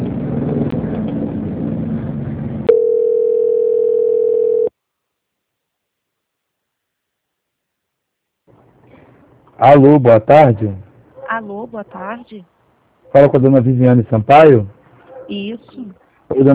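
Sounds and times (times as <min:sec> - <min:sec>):
steady single-pitch telephone line tone while a bank call is transferred: 0:02.7 - 0:04.7
speech: 0:09.6 - 0:10.8, 0:11.4 - 0:16.5.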